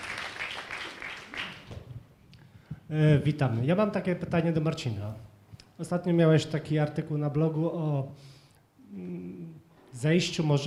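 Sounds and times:
audience applause: 0.0s - 1.8s
speech: 2.9s - 8.3s, 8.9s - 9.4s, 10.0s - 10.6s.

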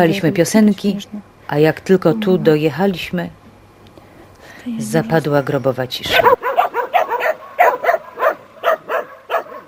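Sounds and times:
speech: 0.0s - 3.4s, 4.6s - 6.4s
dog barking in the protective exclusion zone: 6.1s - 9.6s.

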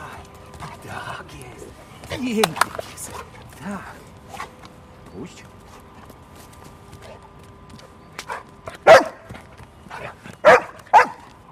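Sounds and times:
speech: 0.9s - 2.9s, 3.6s - 4.1s, 5.2s - 5.5s
dog barking during search training with its handler: 8.3s - 9.3s, 9.9s - 11.2s.

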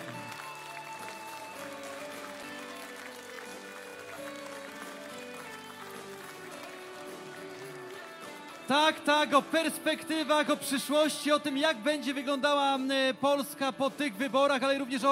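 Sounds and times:
large crowd clapping and cheering at a party election rally in Poland: 0.0s - 10.5s
steady music playing at an election rally: 0.0s - 15.0s
speech: 8.7s - 15.0s.

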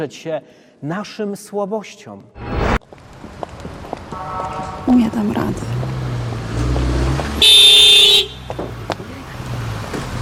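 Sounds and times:
speech: 0.0s - 3.0s, 4.2s - 5.8s
street noise: 2.2s - 10.2s
car horn honking at pedestrian: 4.1s - 5.5s, 7.4s - 8.7s.

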